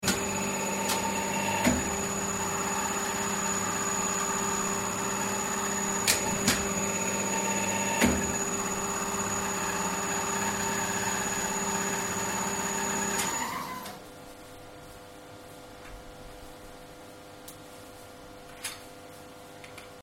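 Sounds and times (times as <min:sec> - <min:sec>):
industrial press at a factory: 0:00.0 - 0:13.5.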